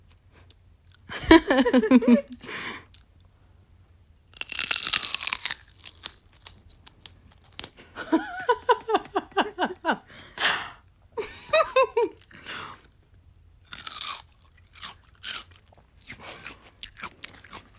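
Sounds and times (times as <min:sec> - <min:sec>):
laughter: 0:01.1 - 0:02.4, 0:08.0 - 0:10.1, 0:11.2 - 0:12.2
person biting and chewing celery with peanut butter: 0:04.3 - 0:07.8, 0:13.6 - 0:17.7.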